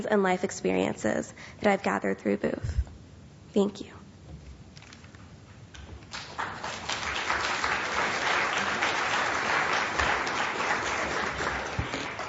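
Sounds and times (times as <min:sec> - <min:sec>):
speech: 0:00.0 - 0:02.9, 0:03.6 - 0:04.0
room full of people applauding: 0:06.1 - 0:12.2.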